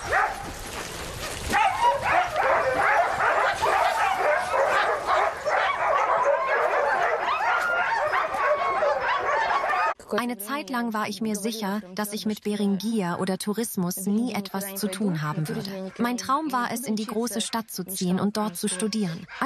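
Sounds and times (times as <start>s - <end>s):
pack of sled dogs barking: 0.0s - 10.0s, 14.8s - 19.4s
sled dogs whimpering: 0.0s - 10.0s, 18.4s - 19.4s
speech: 10.2s - 19.4s.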